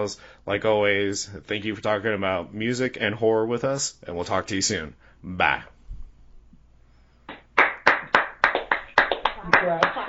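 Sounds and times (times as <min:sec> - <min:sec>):
speech: 0:00.0 - 0:05.8, 0:09.6 - 0:10.0
hand clapping from a few people: 0:07.3 - 0:10.0.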